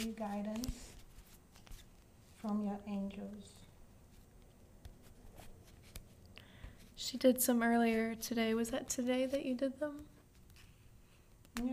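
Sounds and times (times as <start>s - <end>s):
speech: 0.0s - 1.0s, 2.4s - 3.6s, 7.0s - 10.1s, 11.6s - 11.7s
deck of cards being shuffled with riffling flicks and light slaps: 0.0s - 2.7s, 3.4s - 7.0s, 7.7s - 11.7s.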